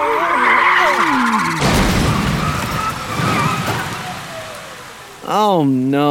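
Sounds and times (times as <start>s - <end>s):
car tires squealing as cars lose control: 0.0s - 5.3s
collision debris clattering and scraping: 0.9s - 4.9s
cars crashing into stopped cars in a traffic jam: 0.9s - 5.2s
speech: 5.5s - 6.1s.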